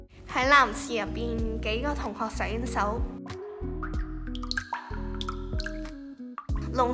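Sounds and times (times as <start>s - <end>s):
speech: 0.4s - 3.2s, 6.8s - 6.9s
water dripping from a loosely closed tap: 3.6s - 6.9s.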